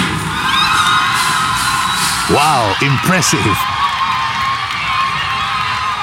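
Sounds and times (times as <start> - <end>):
steel band players and fans cheering a competition win: 0.2 - 6.0
speech: 2.7 - 3.7.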